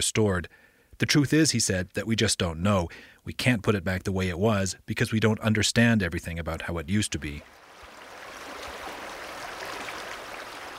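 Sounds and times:
speech: 0.0 - 7.6
snow-fed creek flowing: 7.2 - 10.7.

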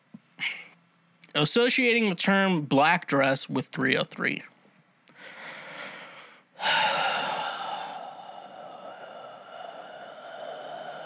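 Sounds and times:
speech: 1.4 - 4.5
long audible exhale of breath: 5.2 - 11.0.

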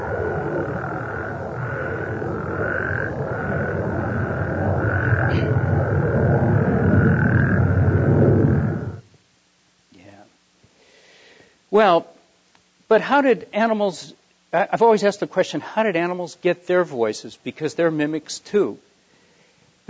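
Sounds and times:
dense chorus of frogs croaking: 0.0 - 9.1
loud steady low rumble of mechanical noise: 0.0 - 9.2
speech: 11.8 - 12.1, 12.9 - 18.9.

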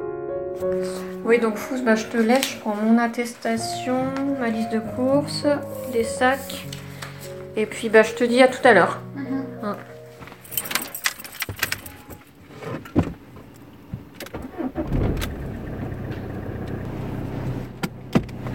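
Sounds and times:
speech: 0.6 - 6.8, 7.6 - 9.1
keys jingling and clinking: 10.2 - 12.4
car engine cranking and settling into idle: 11.2 - 18.5
car door thudding: 12.7 - 15.5, 17.8 - 18.5.

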